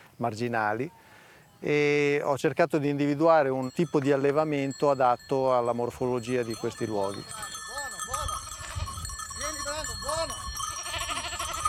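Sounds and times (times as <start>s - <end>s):
speech: 0.2s - 7.5s
Cashmere goats bleating: 8.4s - 9.1s, 10.7s - 11.6s.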